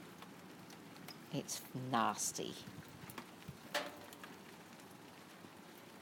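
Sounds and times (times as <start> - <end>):
rain pattering outside: 0.0 - 5.9
speech: 1.3 - 2.9
rain drips and taps: 3.1 - 4.4.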